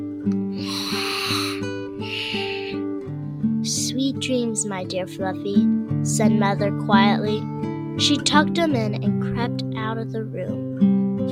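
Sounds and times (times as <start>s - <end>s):
steady musical bed: 0.0s - 11.3s
drawn-out breathy snores: 0.5s - 2.9s
speech: 4.2s - 10.7s.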